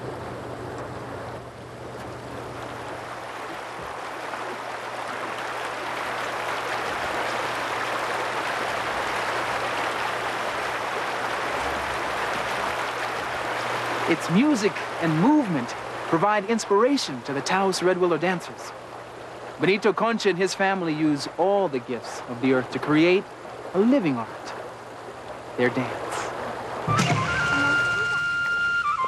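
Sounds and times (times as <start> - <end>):
snowmelt-fed Red Willow Creek rushing: 0.0 - 29.0
speech: 14.1 - 18.8, 19.6 - 24.5, 25.6 - 26.0.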